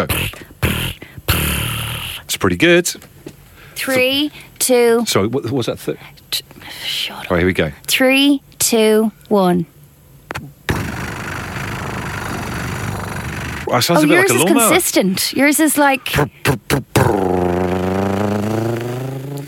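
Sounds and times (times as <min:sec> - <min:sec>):
person imitating a cat purring with their voice: 0:00.0 - 0:02.3, 0:10.7 - 0:14.8, 0:16.0 - 0:19.4
speech: 0:02.4 - 0:03.1, 0:03.8 - 0:09.8, 0:13.7 - 0:17.4.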